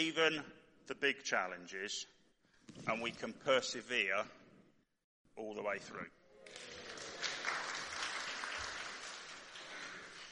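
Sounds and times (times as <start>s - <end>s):
speech: 0.0s - 4.4s, 5.4s - 6.7s
audience applause: 6.4s - 10.3s.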